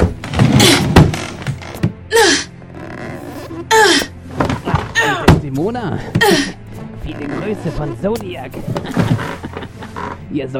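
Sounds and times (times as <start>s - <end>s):
barricaded door creaking: 0.0s - 5.5s, 7.0s - 8.0s, 8.6s - 10.2s
speech: 7.6s - 9.2s, 10.3s - 10.5s.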